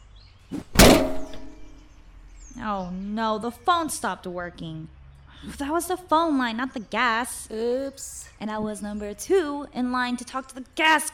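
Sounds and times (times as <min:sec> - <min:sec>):
axe chopping into a plastic valve case: 0:00.6 - 0:01.7
speech: 0:02.6 - 0:11.1.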